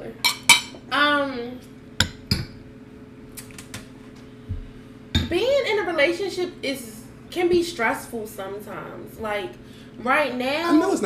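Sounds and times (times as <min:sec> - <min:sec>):
glasses clinking together in a toast: 0:00.2 - 0:00.7
speech: 0:05.3 - 0:11.0.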